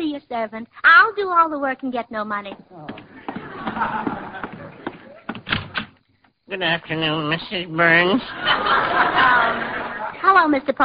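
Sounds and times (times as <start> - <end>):
speech: 0.0 - 3.0, 3.7 - 4.4, 6.5 - 10.8
sharp bumps: 2.2 - 6.4
dull thuds and knocks: 2.5 - 6.0
door opening: 2.5 - 6.4
laughter: 2.9 - 5.4, 7.9 - 10.2.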